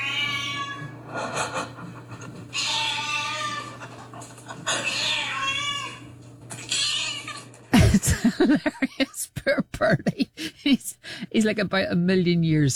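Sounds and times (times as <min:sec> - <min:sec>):
old cat meowing loudly for food: 0:00.0 - 0:00.9, 0:02.5 - 0:03.8, 0:04.8 - 0:07.5
steady low hum: 0:00.0 - 0:06.6, 0:07.8 - 0:12.7
laughter: 0:01.1 - 0:02.5, 0:03.4 - 0:05.0, 0:07.7 - 0:11.7
speech: 0:08.4 - 0:09.0, 0:11.4 - 0:12.7.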